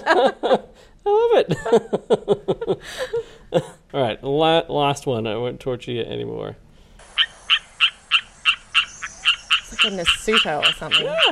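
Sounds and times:
speech: 0.0 - 3.1, 4.4 - 6.6, 9.8 - 11.2
rocket frog chirping call: 7.0 - 11.2.

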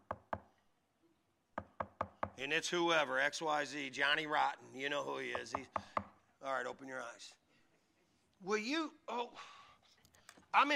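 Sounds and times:
sharp knocks on a door: 1.6 - 2.4, 5.3 - 6.1
speech: 2.4 - 7.4, 8.4 - 9.6, 10.5 - 10.7.

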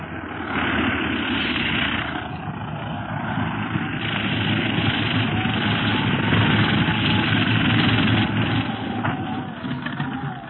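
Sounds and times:
propeller plane engine droning as the aircraft lands: 0.0 - 10.4.

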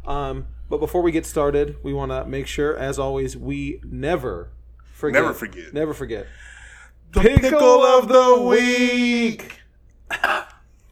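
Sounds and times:
quiet hum: 0.0 - 10.9
speech: 0.1 - 10.4
person coughing: 10.1 - 10.6.

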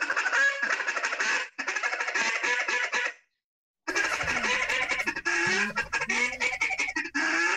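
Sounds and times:
drawn-out quacks: 0.0 - 3.2, 3.9 - 7.5
duck call rapid rolling feeding chatter: 0.0 - 3.2, 3.9 - 7.5
laughter: 3.9 - 7.2.

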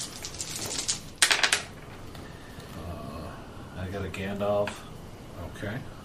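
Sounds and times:
three dice rattling onto a table in a tabletop roleplaying game: 0.0 - 1.8
speech: 4.0 - 4.9, 5.5 - 6.0.

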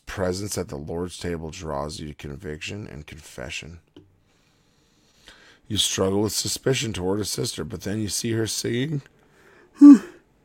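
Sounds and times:
speech: 0.2 - 3.9, 5.7 - 9.2, 9.8 - 10.1
yawn: 9.8 - 10.2.

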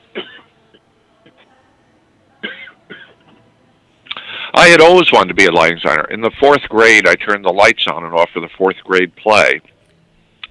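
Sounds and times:
person coughing: 0.2 - 0.5, 2.4 - 3.2
speech: 4.6 - 9.7.

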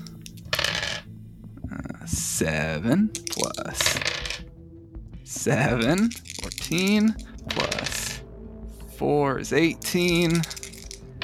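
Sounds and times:
big handful of dice clattering across a hard surface: 0.0 - 1.0, 3.1 - 4.4, 5.5 - 8.2, 9.7 - 11.2
speech: 2.4 - 4.5, 5.3 - 8.0, 9.0 - 10.6.

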